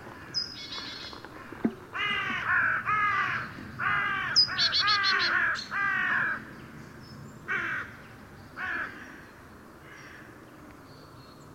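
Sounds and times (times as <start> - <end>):
carrion crow giving drawn-out rasping caws: 0.1 - 6.5, 7.5 - 8.0, 8.6 - 10.4.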